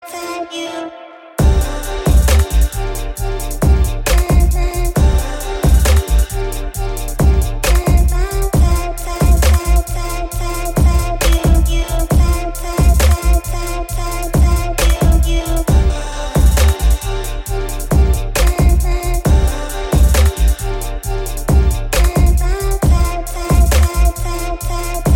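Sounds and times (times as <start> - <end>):
iPhone chill trap ringtone: 1.4 - 25.1.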